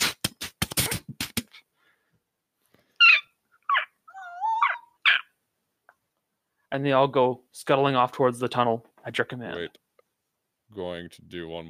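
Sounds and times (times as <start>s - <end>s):
small summoned foxes yipping and whining in a video game: 3.0s - 5.4s
speech: 6.7s - 9.8s, 10.7s - 11.6s.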